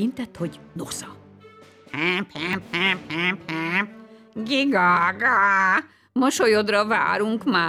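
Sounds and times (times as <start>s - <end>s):
speech: 0.0s - 1.2s, 1.9s - 7.6s
goose and duck quacking honks: 1.9s - 4.0s.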